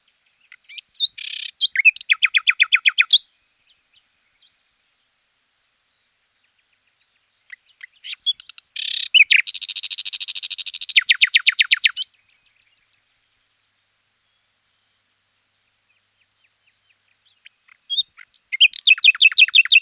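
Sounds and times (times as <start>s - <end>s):
common nightingale song: 0.0s - 19.8s
scattered bird chirps: 0.4s - 3.2s, 6.3s - 12.8s, 15.6s - 19.8s.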